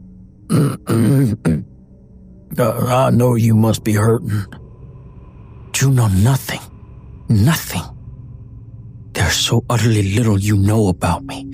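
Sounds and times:
man clearing throat: 0.5s - 1.7s
speech: 0.7s - 1.5s, 2.5s - 4.6s, 5.8s - 6.7s, 7.3s - 7.9s, 9.3s - 11.5s.

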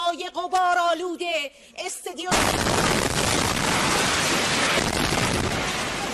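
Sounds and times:
woman speaking during a live television broadcast: 0.0s - 2.4s
dense roaring and crackling noise: 2.3s - 6.1s
loud explosion from a missile strike: 2.3s - 6.1s.

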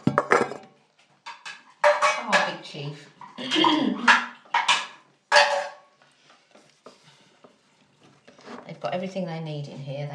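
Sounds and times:
pet food dishes clattering and clinking: 0.0s - 6.0s
speech: 2.6s - 4.2s, 8.8s - 10.1s.

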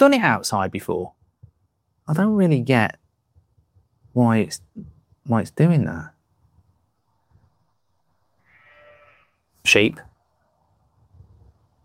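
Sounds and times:
speech: 0.0s - 1.2s, 2.1s - 3.0s, 4.2s - 6.1s, 9.6s - 10.1s
sheep bleating: 8.4s - 9.4s.

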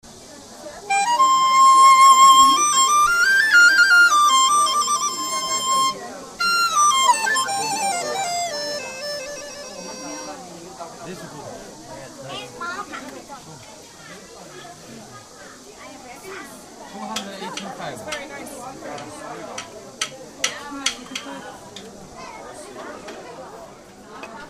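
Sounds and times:
Chinese flute: 0.8s - 10.5s.

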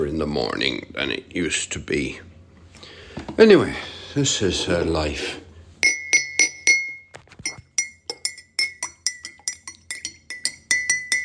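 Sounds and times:
speech: 0.0s - 2.3s, 3.2s - 5.4s
spoon stirring a cup of tea clinking against the cup: 5.8s - 11.2s.

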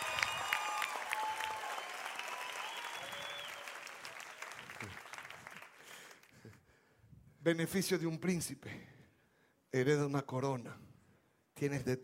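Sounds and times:
loud sustained applause from a congregation: 0.0s - 6.3s
speech: 7.4s - 8.9s, 9.7s - 10.8s, 11.6s - 12.0s.

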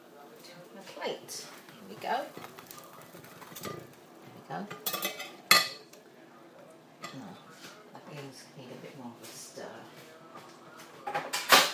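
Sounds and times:
faint sizzling in a frying pan: 0.0s - 10.8s
speech: 1.0s - 2.4s, 4.5s - 4.9s
metal utensils clinking and scraping a frying pan transferring fry bread: 2.3s - 4.0s, 4.6s - 5.8s.

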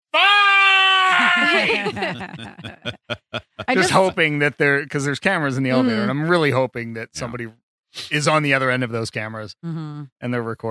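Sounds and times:
person screaming at the top of their lungs in an elevator: 0.1s - 2.4s
laughter: 1.1s - 4.8s, 5.7s - 6.2s
speech: 1.5s - 10.6s.

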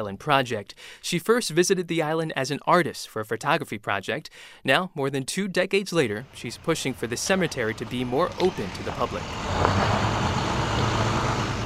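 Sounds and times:
speech: 0.0s - 10.0s
refrigerated truck engine rumble arriving at a gate from the city morgue: 6.2s - 11.6s.

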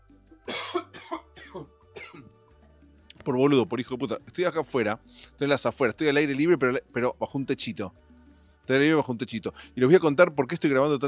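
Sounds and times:
harsh raspy coughs outdoors under a small roof: 0.5s - 2.4s
speech: 1.5s - 1.7s, 3.2s - 8.1s, 8.7s - 11.0s.

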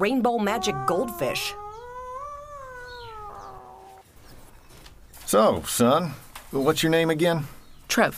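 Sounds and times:
speech: 0.0s - 1.6s, 5.3s - 8.1s
cat meowing: 0.4s - 4.0s.

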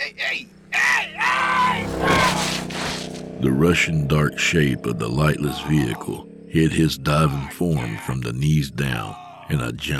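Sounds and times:
man screaming in terror: 0.7s - 2.4s
speech: 3.4s - 9.9s.

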